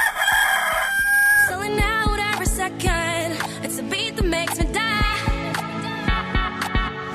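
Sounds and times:
rooster crowing: 0:00.0 - 0:01.6
bright bouncy music with a steady beat: 0:01.6 - 0:07.1.

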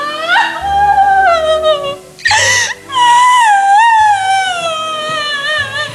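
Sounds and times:
woman wailing and crying: 0:00.0 - 0:05.9.

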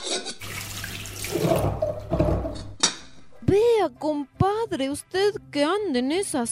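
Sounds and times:
water running from a tap for vegetable soup: 0:00.4 - 0:02.1
speech: 0:03.8 - 0:06.5.

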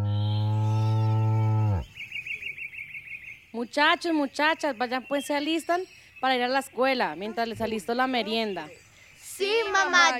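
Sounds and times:
cow mooing: 0:00.4 - 0:01.8
faint bird chirps: 0:01.8 - 0:09.7
speech: 0:03.6 - 0:08.8, 0:09.4 - 0:10.1.

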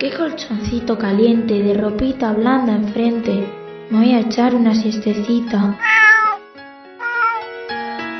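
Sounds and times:
speech: 0:00.0 - 0:06.0
cat meowing: 0:05.8 - 0:07.5.

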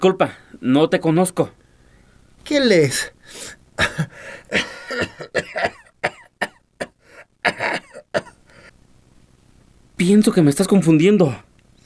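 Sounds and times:
speech: 0:00.0 - 0:01.6, 0:02.4 - 0:05.8, 0:10.0 - 0:11.5
coughing and throat clearing from someone with a cold and congestion: 0:03.8 - 0:08.4.

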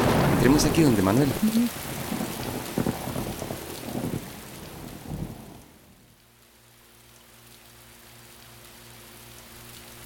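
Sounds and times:
deep rumbles of thunder: 0:00.0 - 0:05.7
heavy rain pouring down: 0:00.0 - 0:10.0
speech: 0:00.4 - 0:02.0.

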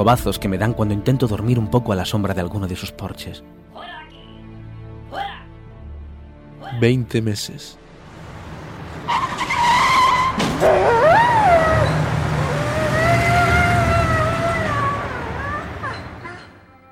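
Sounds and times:
speech: 0:00.0 - 0:03.7, 0:06.7 - 0:07.8
tire screech from a skidding car: 0:08.3 - 0:16.6
dog yelping in pain after being hit by a car: 0:10.5 - 0:16.6.

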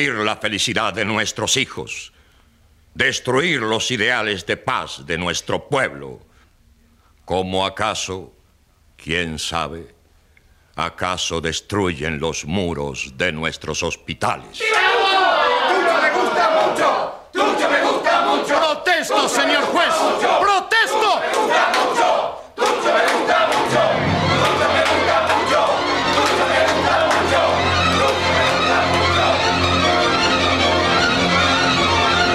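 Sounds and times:
speech: 0:00.0 - 0:02.2, 0:03.0 - 0:06.3, 0:07.3 - 0:08.4, 0:09.0 - 0:10.0, 0:10.8 - 0:14.9
large crowd cheering and shouting in a long loud ovation: 0:14.6 - 0:32.2.

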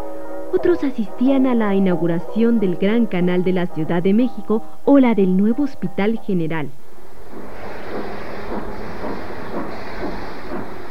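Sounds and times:
steam train chugging along the rails: 0:00.0 - 0:10.8
speech: 0:00.5 - 0:06.8
steam train hiss: 0:07.3 - 0:10.8.

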